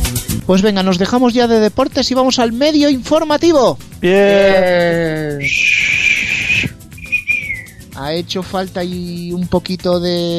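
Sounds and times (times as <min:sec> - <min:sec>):
speech: 0:00.2 - 0:06.0, 0:08.0 - 0:10.3
person whistling: 0:05.1 - 0:08.0.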